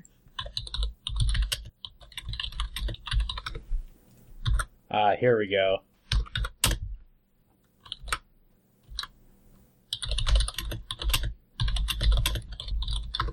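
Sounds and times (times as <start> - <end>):
typing on a computer keyboard without home-key bumps: 0.3 - 3.6, 6.1 - 6.8, 7.8 - 8.2, 9.9 - 13.3
speech: 4.9 - 5.9.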